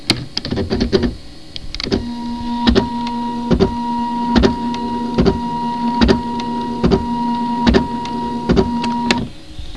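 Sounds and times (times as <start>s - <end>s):
computer printer printing: 1.8s - 9.4s.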